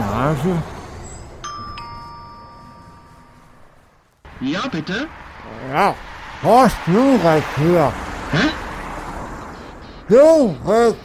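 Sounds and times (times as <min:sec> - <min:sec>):
speech: 0:00.3 - 0:00.8, 0:04.4 - 0:08.6, 0:10.1 - 0:11.0
doorbell chiming ding-dong: 0:01.4 - 0:03.7.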